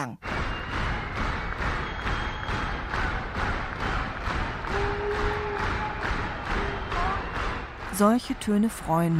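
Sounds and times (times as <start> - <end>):
speech: 0.0 - 1.3, 8.0 - 9.1
large audience clapping in steady unison: 0.2 - 9.1
faint whistles: 0.4 - 2.9, 5.8 - 7.8.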